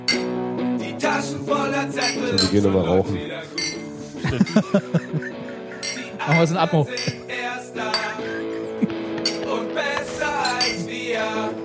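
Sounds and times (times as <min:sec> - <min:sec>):
glasses clinking together in a toast: 0:00.0 - 0:00.4, 0:01.9 - 0:02.8, 0:03.5 - 0:11.6
speech: 0:01.0 - 0:03.6, 0:04.3 - 0:08.0
light laughter: 0:04.2 - 0:06.2, 0:08.2 - 0:09.3.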